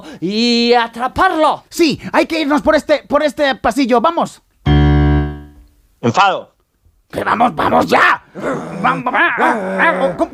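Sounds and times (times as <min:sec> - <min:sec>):
speech: 0:00.1 - 0:04.5, 0:06.0 - 0:06.5, 0:07.1 - 0:10.3
angry dog growling with snarls and yips: 0:08.3 - 0:10.3.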